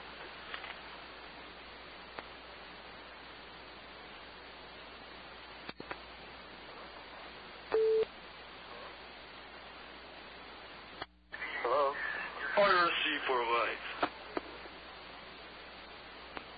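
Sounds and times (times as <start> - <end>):
steady hiss of phone-line static: 0.0 - 16.5
telephone call-waiting tone electronic beep: 7.8 - 8.1.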